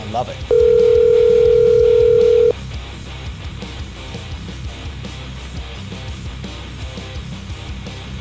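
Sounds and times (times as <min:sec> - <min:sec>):
speech: 0:00.1 - 0:00.9
studio soundstage phone system ringing: 0:00.5 - 0:02.5.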